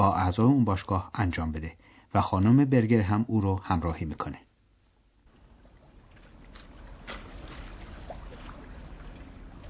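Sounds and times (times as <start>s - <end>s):
speech: 0.0s - 4.4s
steady water wash on a lake: 4.8s - 9.6s
rowing boat oars splashing in lake water in Mecklenburg-Vorpommern Germany: 5.3s - 9.6s.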